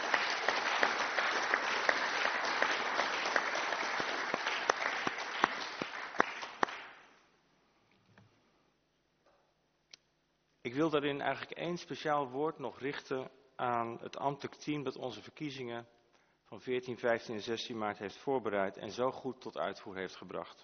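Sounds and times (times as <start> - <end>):
crowd applauding with dense clapping: 0.0 - 7.0
speech: 10.8 - 20.6.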